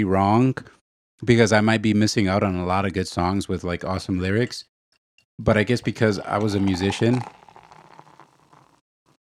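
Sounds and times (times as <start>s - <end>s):
speech: 0.0s - 4.7s, 5.4s - 7.4s
beer pouring into a glass: 5.8s - 8.8s.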